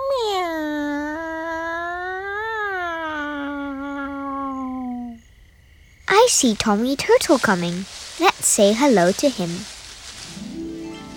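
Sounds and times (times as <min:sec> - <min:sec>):
person's voice imitating a long drawn-out cat meow: 0:00.0 - 0:05.2
speech: 0:06.3 - 0:09.7.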